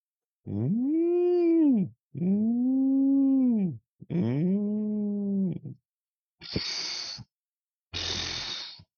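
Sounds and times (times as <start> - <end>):
voice imitating whale moans: 0.4 - 5.8
breathy hissing bursts from a voice imitating a whale blowhole: 6.4 - 7.3, 8.0 - 8.9.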